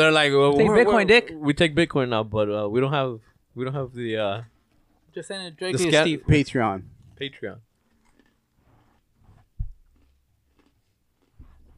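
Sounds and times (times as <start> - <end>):
speech: 0.0 - 4.5, 5.2 - 7.7
crunching and chewing fried pork rinds: 7.8 - 9.1, 9.8 - 11.7.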